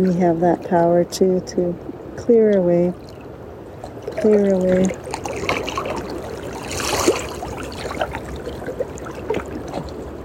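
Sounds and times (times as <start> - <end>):
speech: 0.0 - 3.2, 4.1 - 5.1
small waves lapping gently against the shore: 0.0 - 10.2.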